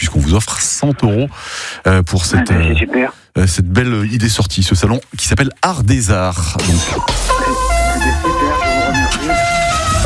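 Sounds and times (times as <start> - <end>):
speech: 0.2 - 8.1
melodic car horn jingle: 7.2 - 10.0.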